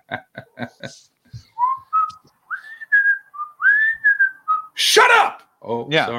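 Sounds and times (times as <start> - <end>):
laughter: 0.0 - 1.0
speech: 0.1 - 1.2, 5.7 - 6.1
person whistling a short wandering tune: 1.4 - 4.8.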